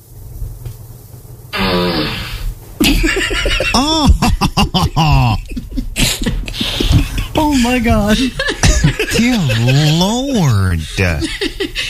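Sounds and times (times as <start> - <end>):
quiet hum: 0.0 - 11.8
fart sound effect played by a smart speaker: 1.5 - 2.6
laughter: 2.8 - 11.8
speech: 3.7 - 5.4, 7.6 - 8.5, 9.2 - 11.8.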